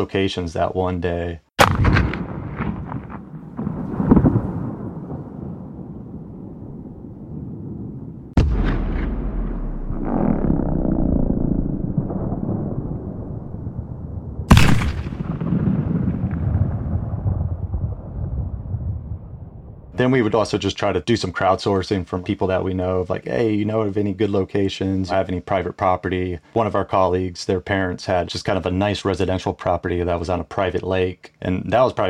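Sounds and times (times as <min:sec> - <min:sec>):
speech: 0:00.0 - 0:02.1, 0:20.1 - 0:32.0
cannons firing rounds outdoors in a lush valley: 0:01.6 - 0:06.0, 0:08.3 - 0:20.0
low rumble and echo of cannon blasts in a valley: 0:01.6 - 0:20.0.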